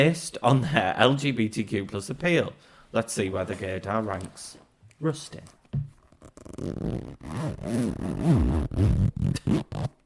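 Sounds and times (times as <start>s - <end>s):
speech: 0.0s - 10.0s
zip being pulled open: 6.1s - 10.0s.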